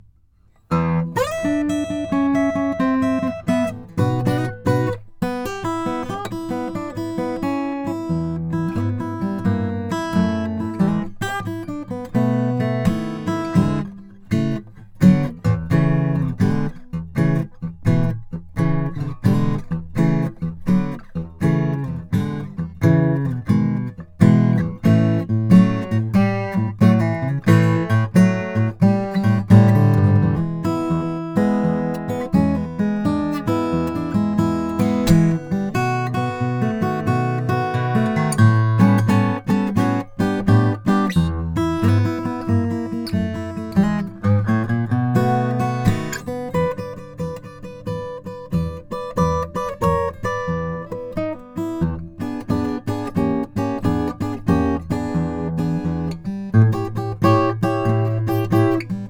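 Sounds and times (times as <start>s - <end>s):
acoustic guitar with German spruce top: 0.0s - 59.0s.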